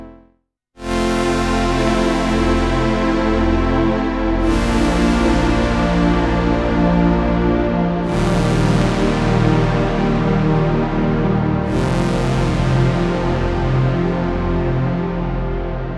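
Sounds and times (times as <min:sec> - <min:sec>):
KORG pure saw synth pad: 0:01.0 - 0:15.9.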